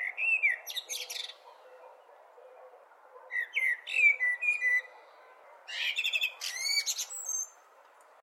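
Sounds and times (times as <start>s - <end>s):
blackbird singing: 0.0s - 2.6s, 3.2s - 5.0s, 5.7s - 7.6s.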